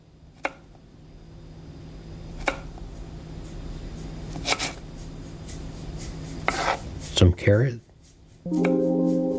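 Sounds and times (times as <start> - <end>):
steady low hum: 0.0 - 9.3
knife chopping celery on a board for a soup: 0.4 - 0.7, 2.3 - 3.0, 4.3 - 7.1
speech: 7.2 - 7.8, 8.4 - 8.9.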